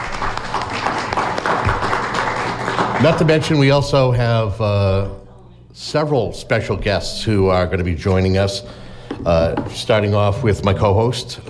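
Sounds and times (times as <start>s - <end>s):
audience applause in a room at a live talk event: 0.0s - 3.9s
speech: 3.0s - 5.2s, 5.8s - 11.4s.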